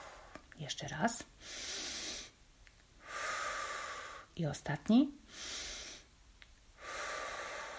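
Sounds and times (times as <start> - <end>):
deep breaths in through the nose and out through the mouth: 0.0 - 0.6, 1.4 - 2.4, 3.0 - 4.4, 5.2 - 6.2, 6.8 - 7.7
speech: 0.6 - 1.9, 4.4 - 5.6.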